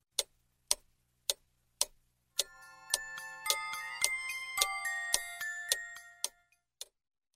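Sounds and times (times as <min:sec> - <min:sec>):
large clock ticking: 0:00.0 - 0:07.3
large clock playing a bright tinkling chime melody: 0:02.4 - 0:06.6.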